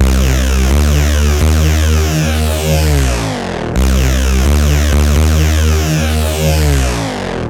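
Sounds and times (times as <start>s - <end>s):
electro bass loop: 0.0s - 7.4s.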